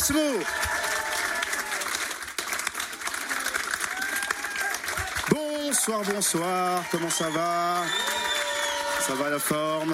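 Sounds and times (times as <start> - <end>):
speech: 0.0 - 0.7, 5.3 - 8.3, 9.1 - 9.9
large crowd clapping and cheering: 0.0 - 9.9
whoops and whistles from crowd: 7.1 - 9.0.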